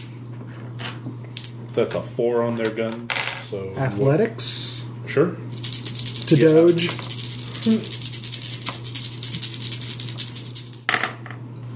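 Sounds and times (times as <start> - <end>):
speech: 1.8 - 5.6, 6.3 - 8.0
dice clattering across a hard tabletop: 5.6 - 11.1.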